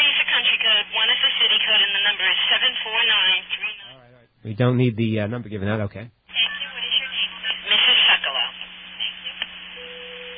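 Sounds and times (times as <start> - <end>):
narrow noisy phone line: 0.0 - 4.4, 6.3 - 10.3
speech: 4.4 - 6.2
MF telephone signaling tones from the old AT&T system: 9.8 - 10.3.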